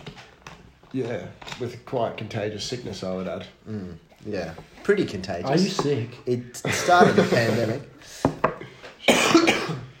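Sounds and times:
speech: 0:00.9 - 0:08.3
laughter: 0:06.6 - 0:08.0
person coughing: 0:09.0 - 0:09.9.

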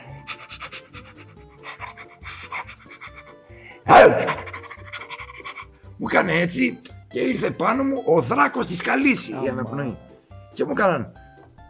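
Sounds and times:
person imitating a muzzled dog panting: 0:00.0 - 0:05.8
speech: 0:06.1 - 0:10.0, 0:10.6 - 0:11.2.

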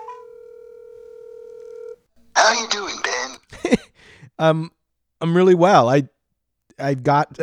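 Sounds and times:
steady telephone tone as a call is placed: 0:00.0 - 0:03.4
speech: 0:02.5 - 0:06.2, 0:06.8 - 0:07.4.

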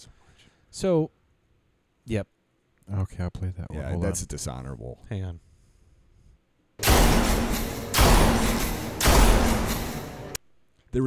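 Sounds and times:
speech: 0:00.8 - 0:01.2, 0:02.1 - 0:05.5
shotgun blasts in a video game: 0:06.8 - 0:10.4.

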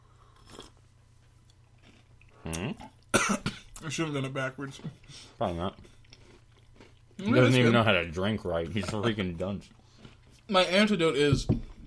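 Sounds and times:
crunchy chewing on a cookie: 0:00.0 - 0:00.8, 0:01.4 - 0:02.9, 0:03.8 - 0:07.6, 0:08.6 - 0:10.5
low steady hum: 0:00.0 - 0:11.8
speech: 0:02.5 - 0:05.9, 0:07.2 - 0:09.8, 0:10.5 - 0:11.7.

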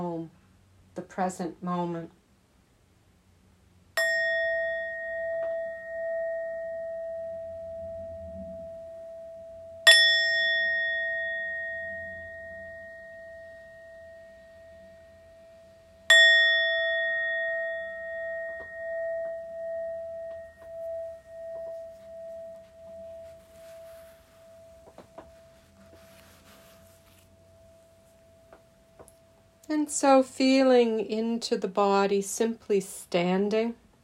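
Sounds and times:
speech: 0:01.0 - 0:02.2, 0:29.9 - 0:33.8
struck mindfulness bell ringing during standing and walking meditation: 0:04.0 - 0:29.7.

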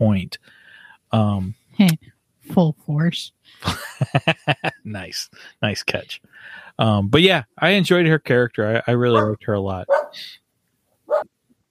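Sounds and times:
speech: 0:00.0 - 0:10.4
laughter: 0:03.6 - 0:04.9
single short dog bark: 0:09.2 - 0:10.2, 0:11.1 - 0:11.3.

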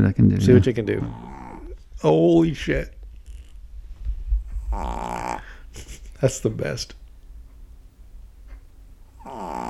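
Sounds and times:
speech: 0:00.0 - 0:01.4, 0:02.0 - 0:03.0, 0:04.7 - 0:07.0
female chihuahua snoring while asleep: 0:01.0 - 0:01.8, 0:04.6 - 0:05.6, 0:09.2 - 0:09.6.

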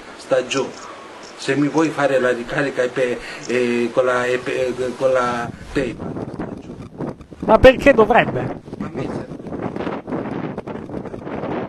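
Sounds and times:
speech: 0:00.3 - 0:06.4, 0:07.5 - 0:09.1
wind buffeting the microphone: 0:03.2 - 0:11.6.

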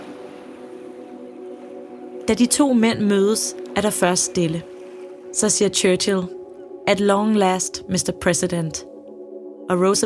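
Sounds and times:
small motorboat engine humming: 0:00.0 - 0:05.4
faint wash of water beneath a motorboat: 0:00.0 - 0:06.5
speech: 0:02.3 - 0:04.7, 0:05.3 - 0:08.9, 0:09.7 - 0:10.0.

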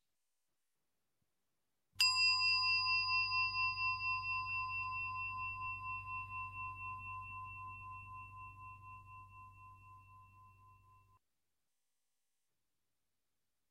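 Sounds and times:
meditation bell struck at a group sitting meditation: 0:02.0 - 0:11.2.

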